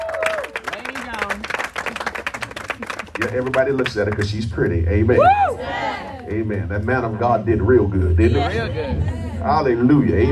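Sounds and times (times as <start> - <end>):
voices whooping and calling out: 0.0 - 0.6, 5.1 - 6.3
crowd clapping hands: 0.0 - 4.8
speech: 3.2 - 10.3.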